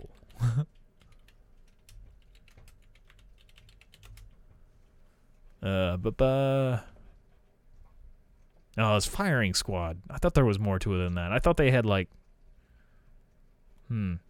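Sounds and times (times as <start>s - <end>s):
typing on a computer keyboard: 0.0s - 4.4s
speech: 5.6s - 6.9s, 8.8s - 12.2s, 13.9s - 14.2s.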